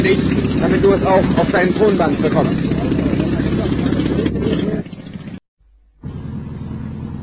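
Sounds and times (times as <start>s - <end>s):
speech: 0.0s - 3.1s
pneumatic jackhammer drilling into the ground: 0.0s - 5.4s.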